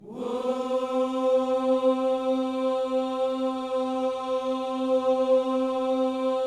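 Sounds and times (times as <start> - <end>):
gospel vocal whoo in C: 0.0 - 6.4.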